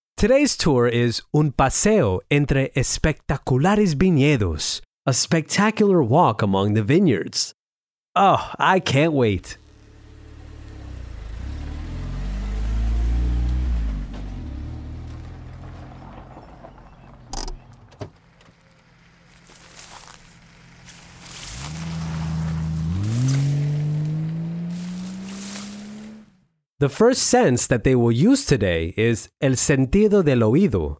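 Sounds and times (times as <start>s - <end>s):
speech: 0.2s - 7.6s, 8.2s - 9.6s, 26.8s - 30.9s
tourist's car engine revving and pulling away onto the road: 9.6s - 26.5s.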